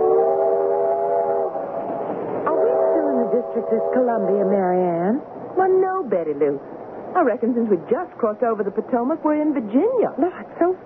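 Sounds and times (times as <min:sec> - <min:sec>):
coal-burning steam train whistle: 0:00.0 - 0:04.7
speech: 0:03.6 - 0:10.8.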